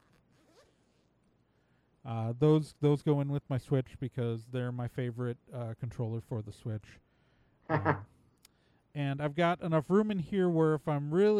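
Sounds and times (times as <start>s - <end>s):
zipper on a small controller carry bag: 0.0s - 1.1s
speech: 2.0s - 7.1s, 7.7s - 8.1s, 9.0s - 11.3s.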